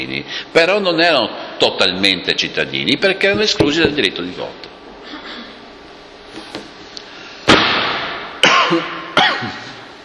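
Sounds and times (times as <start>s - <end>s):
speech: 0.0s - 5.4s, 8.7s - 8.9s
harsh raspy coughing: 8.4s - 9.9s.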